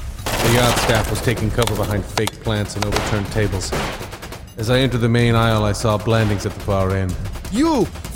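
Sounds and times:
barrage of gunfire aboard a yacht: 0.3 - 2.1, 2.8 - 5.1
speech: 0.5 - 8.0.

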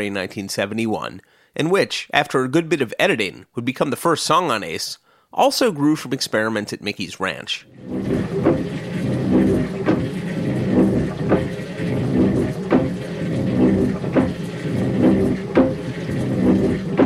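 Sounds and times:
speech: 0.0 - 8.4
water pump running on a ranch in Novato: 7.7 - 17.0.

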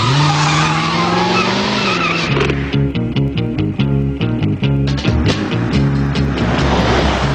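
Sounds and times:
tires screeching: 0.0 - 2.8, 5.3 - 7.3
powerful engine of a fast convertible car roaring: 0.0 - 7.3
loud rhythmic music: 2.6 - 7.3.

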